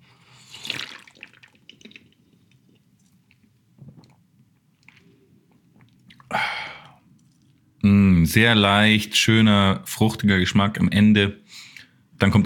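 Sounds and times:
person slurping beer from a can during a beer tasting: 0:00.2 - 0:02.6
quiet swallowing of beer: 0:05.8 - 0:07.3
speech: 0:07.8 - 0:12.4.

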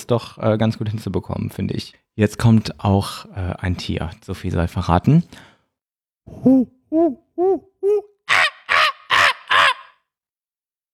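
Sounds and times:
speech: 0:00.1 - 0:05.5, 0:06.3 - 0:08.1
person imitating monkey calls: 0:06.3 - 0:10.1.

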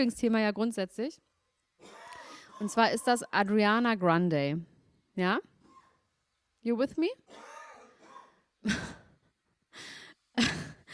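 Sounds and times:
speech: 0:00.0 - 0:02.0, 0:02.6 - 0:05.5, 0:06.6 - 0:07.4, 0:08.6 - 0:08.9
man coughing after choking: 0:01.8 - 0:02.7, 0:07.3 - 0:09.3, 0:10.4 - 0:10.9.

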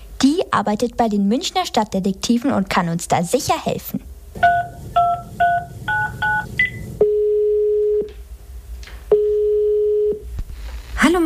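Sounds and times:
speech: 0:00.6 - 0:04.1
touch-tone beeps as a number is dialed: 0:04.4 - 0:08.0
long steady telephone ringing tones: 0:04.4 - 0:08.1, 0:09.1 - 0:10.2.

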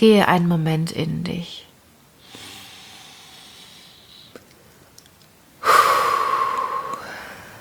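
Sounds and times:
speech: 0:00.0 - 0:01.7
deep breathing during a guided relaxation exercise: 0:02.2 - 0:04.5, 0:05.6 - 0:07.6.

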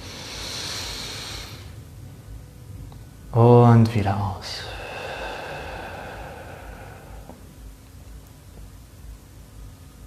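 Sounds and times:
deep breath in during a guided meditation: 0:00.0 - 0:01.8, 0:04.6 - 0:07.5
speech: 0:03.4 - 0:04.8.

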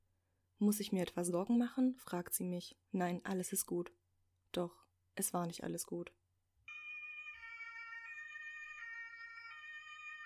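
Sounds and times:
speech: 0:00.6 - 0:06.2
ambulance siren wailing: 0:06.7 - 0:10.2.

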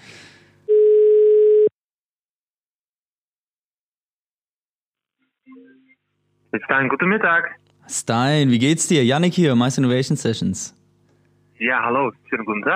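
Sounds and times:
telephone ringback tone while calling: 0:00.7 - 0:01.7
speech: 0:06.5 - 0:10.8, 0:11.6 - 0:12.7.

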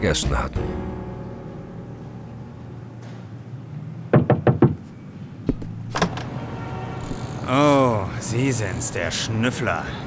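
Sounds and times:
speech: 0:00.0 - 0:00.8, 0:08.3 - 0:10.0
loud knocks on a door: 0:04.1 - 0:04.8
click and rattle of a door latch as the door is opened: 0:05.5 - 0:06.4.

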